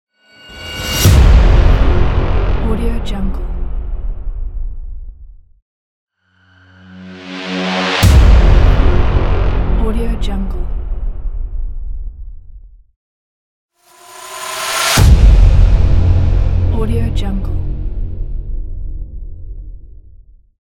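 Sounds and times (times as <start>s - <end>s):
epic horn blast: 0.4s - 3.6s, 6.3s - 10.6s, 13.8s - 18.5s.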